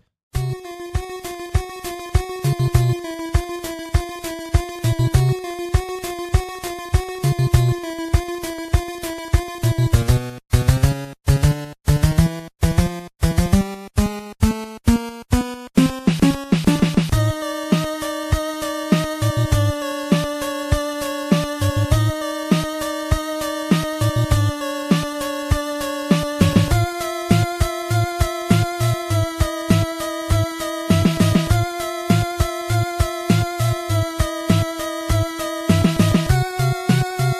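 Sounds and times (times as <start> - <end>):
instrumental villain-style synth theme tune: 0.4 - 37.3.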